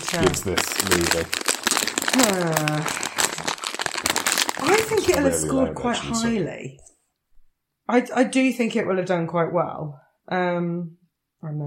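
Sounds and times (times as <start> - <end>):
sweet wrapper packet crinkling and rustling: 0.0 - 5.5
speech: 0.1 - 1.5, 2.1 - 3.1, 4.6 - 6.9, 7.9 - 11.6.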